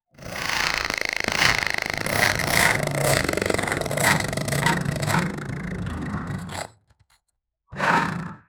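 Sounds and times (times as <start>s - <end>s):
mechanical cybernetic sound: 0.1s - 6.7s.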